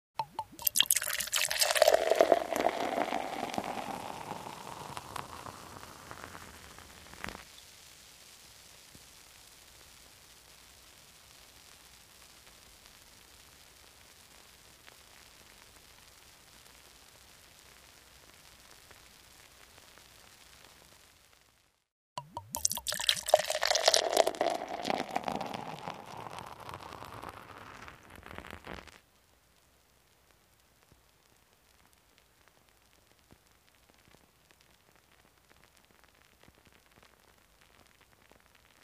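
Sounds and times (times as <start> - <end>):
beer pouring into a glass: 0.2 - 7.4, 22.2 - 28.1.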